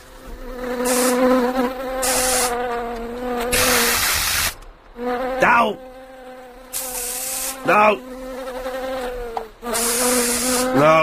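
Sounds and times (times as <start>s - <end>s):
sharp hissing spray bursts: 0.0s - 4.7s, 6.7s - 7.8s, 9.6s - 10.8s
bee buzzing: 0.0s - 11.0s
speech: 5.5s - 5.9s, 7.6s - 8.2s, 10.8s - 11.0s.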